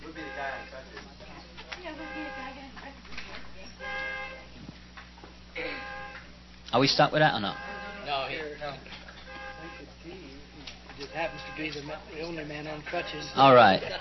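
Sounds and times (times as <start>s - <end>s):
car horn honking: 0.0s - 0.9s, 1.8s - 2.6s, 3.7s - 4.5s, 5.6s - 6.3s, 7.0s - 10.2s, 11.0s - 13.9s
speech: 6.8s - 7.7s, 11.1s - 14.0s.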